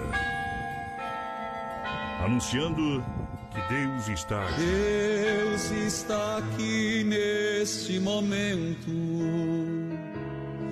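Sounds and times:
large cathedral church bell tolling: 0.0 - 9.4
speech: 2.2 - 9.8.

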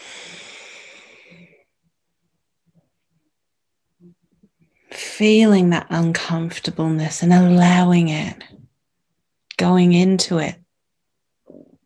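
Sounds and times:
deep inhaling breath during a breathwork exercise: 0.0 - 1.5
speech: 5.2 - 8.6, 9.6 - 10.6.

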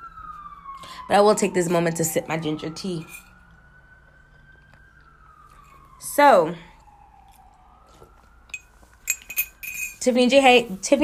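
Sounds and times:
police sirens outside an open house window: 0.0 - 11.0
speech: 1.0 - 3.3, 6.2 - 6.7, 10.0 - 11.0.

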